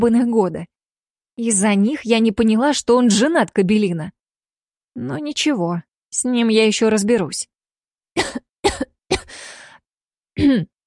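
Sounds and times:
speech: 0.0s - 0.7s, 1.4s - 4.2s, 5.0s - 7.5s, 8.2s - 8.4s, 10.4s - 10.7s
woman clearing her throat: 8.2s - 9.3s, 10.4s - 10.8s
woman coughing: 8.2s - 9.4s, 10.4s - 10.8s.

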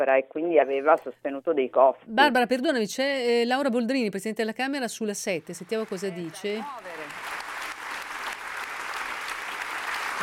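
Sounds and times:
speech: 0.0s - 7.2s
audience applause: 5.6s - 10.2s.

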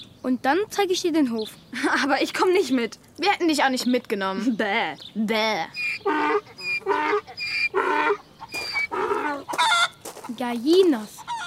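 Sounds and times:
speech: 0.2s - 8.2s, 10.4s - 11.2s
ducks quacking on a farm: 5.7s - 10.4s, 11.2s - 11.4s.

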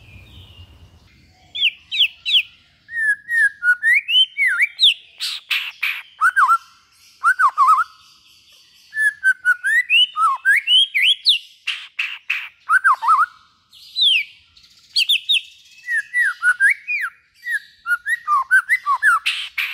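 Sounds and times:
white-rumped shama singing, long-duration song used as a trapping lure: 1.6s - 6.6s, 7.2s - 8.0s, 8.9s - 11.4s, 12.0s - 13.4s, 14.9s - 19.7s.

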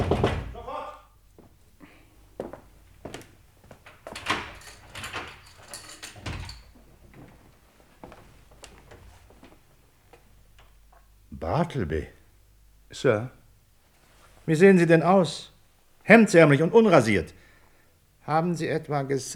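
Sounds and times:
door being unlocked and opened at a law office: 3.8s - 7.0s
speech: 11.7s - 12.2s, 12.9s - 13.4s, 14.4s - 17.4s, 18.3s - 19.3s.

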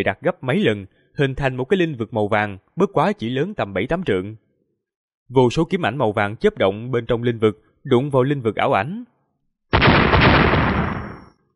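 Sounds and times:
speech: 0.0s - 4.4s, 5.3s - 9.1s
loud explosion: 9.7s - 11.3s.

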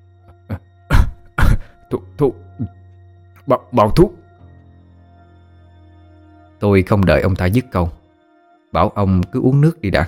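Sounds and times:
man coughing violently after drawing hard on a cigarette: 0.4s - 2.0s
speech: 1.9s - 2.8s, 3.4s - 4.2s, 6.6s - 8.0s, 8.7s - 10.0s.

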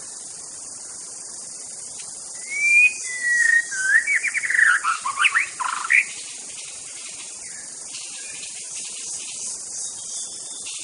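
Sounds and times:
faint steady hiss: 0.0s - 10.8s
white-rumped shama whistled song in forest: 2.4s - 5.4s.

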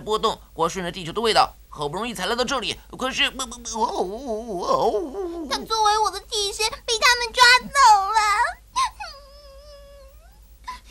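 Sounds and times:
speech: 0.0s - 8.9s
dubbed voice in an animated film crying and wailing: 3.4s - 5.7s, 8.2s - 10.8s.

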